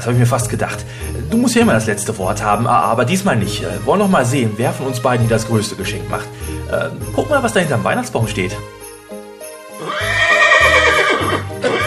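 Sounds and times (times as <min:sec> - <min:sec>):
speech: 0:00.0 - 0:08.8
horse neighing: 0:09.8 - 0:11.8.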